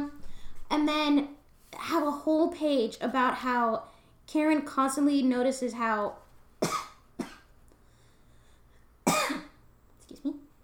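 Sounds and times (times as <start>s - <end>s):
speech: 0.7s - 6.8s
person coughing from a tickle in the throat: 6.6s - 7.5s, 9.0s - 9.6s.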